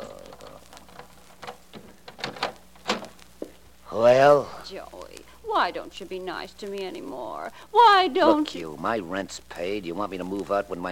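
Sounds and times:
door being unlatched with clicks and rattles: 0.9 - 3.1
speech: 3.9 - 10.9.

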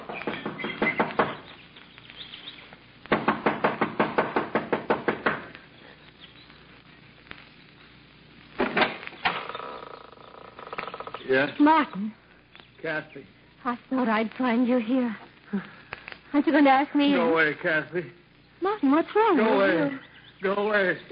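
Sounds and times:
loud rapid knocking on a wooden front door: 0.0 - 1.4, 3.1 - 5.5
speech: 11.3 - 12.2, 12.8 - 18.2, 18.8 - 21.1.

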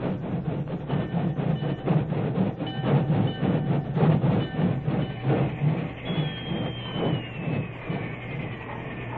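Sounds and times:
work train rolling in on the main track in a light drizzle: 0.0 - 9.1
thin high train engine whistle: 5.4 - 9.1.

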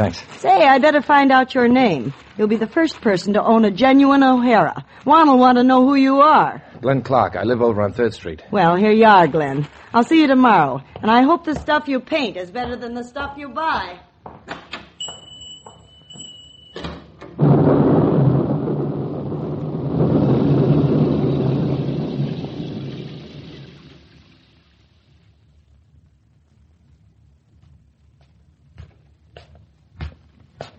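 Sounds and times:
speech: 0.0 - 14.6
loud low thunder roll: 17.4 - 26.1
rain: 17.4 - 27.2.

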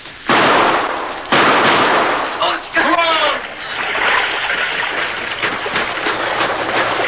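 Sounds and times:
gunshots in a cave: 0.3 - 6.5
rushing water of an underground river splashing: 1.6 - 7.0.

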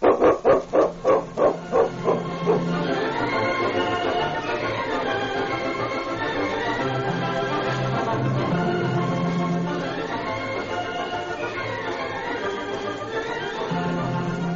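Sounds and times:
dog barking: 0.0 - 2.8
steady wash: 0.0 - 14.5.

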